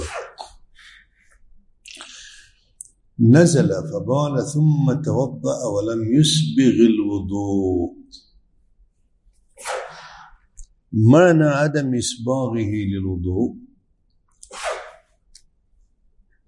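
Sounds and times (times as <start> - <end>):
sharp breathy sneeze: 0.0 - 0.6, 9.6 - 10.2, 14.4 - 15.1
speech: 3.2 - 8.2, 10.9 - 13.7.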